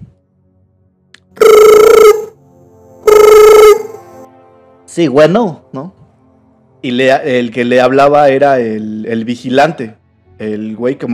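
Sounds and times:
telephone ringing: 0:01.4 - 0:02.4, 0:03.0 - 0:04.0
speech: 0:05.0 - 0:06.0, 0:06.8 - 0:11.1.

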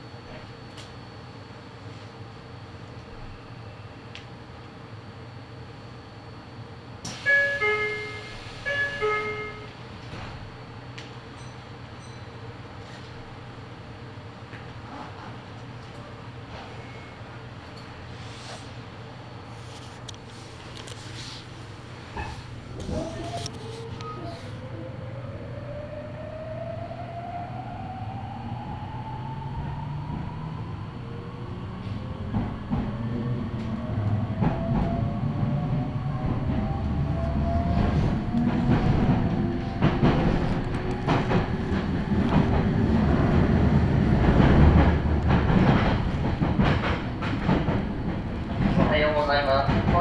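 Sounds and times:
train doors closing: 0:07.0 - 0:11.4, 0:14.8 - 0:25.6, 0:28.5 - 0:49.9
bright electronic train door warning chime melody: 0:07.3 - 0:09.7.

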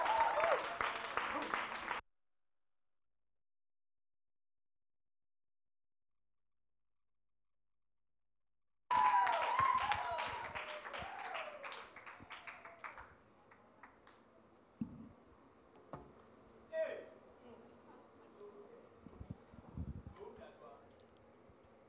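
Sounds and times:
audience applause welcoming a speaker: 0:00.0 - 0:02.0, 0:08.9 - 0:14.2.

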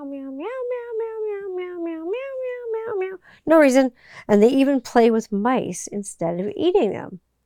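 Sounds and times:
person imitating a cat with a long wavering meow: 0:00.0 - 0:03.3
speech: 0:03.4 - 0:07.2.

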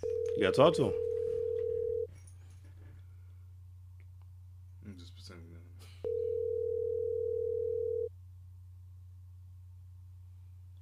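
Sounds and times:
phone ringback tone: 0:00.0 - 0:02.1, 0:06.1 - 0:08.1
faint low hum: 0:00.0 - 0:10.8
speech: 0:00.4 - 0:01.0.

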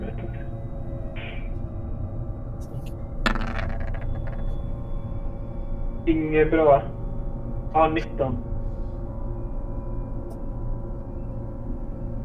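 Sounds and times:
steady low hum: 0:00.0 - 0:12.2
dice tossed onto a hard table: 0:03.3 - 0:04.6
speech: 0:06.1 - 0:07.0, 0:07.7 - 0:08.5.

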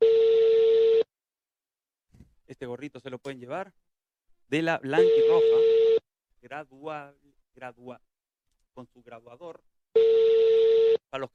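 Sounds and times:
steady telephone tone while a number is dialed: 0:00.0 - 0:01.1, 0:05.0 - 0:06.1, 0:10.0 - 0:11.1
speech: 0:02.6 - 0:03.9, 0:04.5 - 0:08.1, 0:08.8 - 0:11.3.

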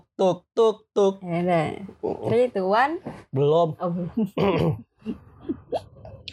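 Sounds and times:
speech: 0:00.2 - 0:05.9
person clearing throat: 0:04.4 - 0:05.6.

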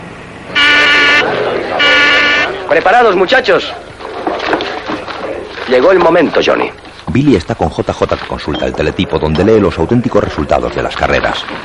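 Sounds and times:
buzzer pressed to alert a café: 0:00.5 - 0:02.6
speech: 0:02.7 - 0:03.9, 0:05.7 - 0:11.6.

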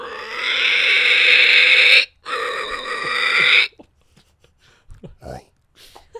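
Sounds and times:
person imitating pig squeal: 0:00.0 - 0:03.8.

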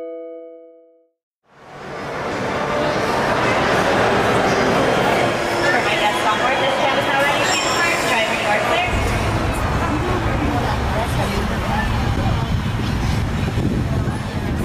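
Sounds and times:
theme park tram rolling with rumble and clatter: 0:01.5 - 0:14.6
bright chime tones: 0:07.2 - 0:08.9.

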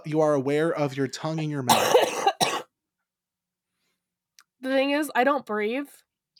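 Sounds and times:
speech: 0:00.0 - 0:02.1, 0:04.6 - 0:06.1
sharp cough: 0:01.4 - 0:02.7.

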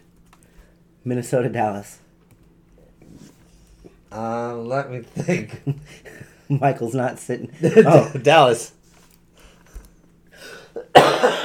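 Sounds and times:
speech: 0:01.0 - 0:02.0, 0:04.1 - 0:08.8
person coughing nervously: 0:10.8 - 0:11.4.

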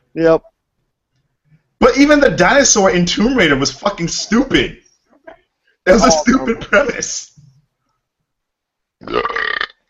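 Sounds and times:
speech: 0:00.2 - 0:00.5, 0:01.8 - 0:04.8, 0:05.8 - 0:07.3
loud throaty burp: 0:09.0 - 0:09.8.

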